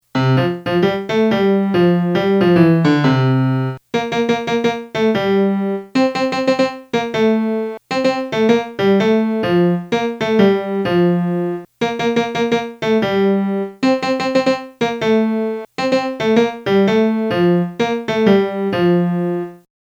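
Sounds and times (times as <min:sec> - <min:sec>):
melody: 0:00.2 - 0:19.7.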